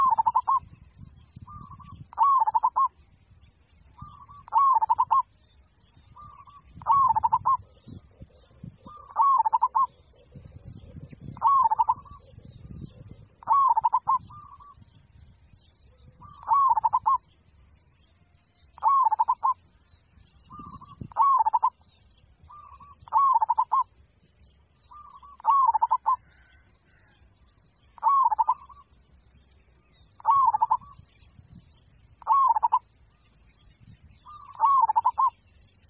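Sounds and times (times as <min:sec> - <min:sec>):
zebra dove cooing: 0:00.0 - 0:00.6, 0:01.5 - 0:02.9, 0:04.0 - 0:05.3, 0:06.2 - 0:14.8, 0:16.2 - 0:17.2, 0:18.8 - 0:19.6, 0:20.5 - 0:21.8, 0:22.5 - 0:23.9, 0:24.9 - 0:27.2, 0:28.0 - 0:28.9, 0:30.2 - 0:31.0, 0:32.2 - 0:32.9, 0:34.3 - 0:35.4.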